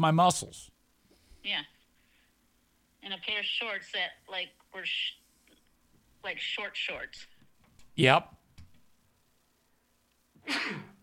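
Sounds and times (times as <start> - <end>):
speech: 0.0 - 0.7, 1.4 - 1.8, 3.0 - 5.2, 6.2 - 7.3, 8.0 - 8.4, 10.4 - 10.9
hum: 0.0 - 11.0
person sneezing: 10.4 - 11.0.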